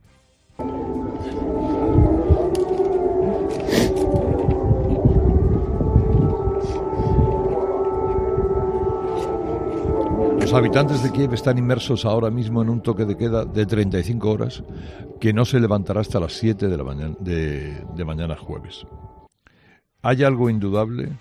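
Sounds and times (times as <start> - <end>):
air raid siren wailing during bombardments: 0.6 - 19.3
speech: 10.6 - 19.2, 20.0 - 21.2.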